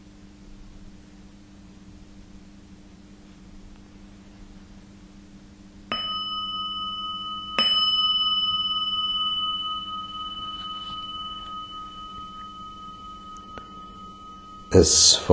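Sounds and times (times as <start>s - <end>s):
meditation gong struck: 5.9s - 15.3s
speech: 14.8s - 15.3s.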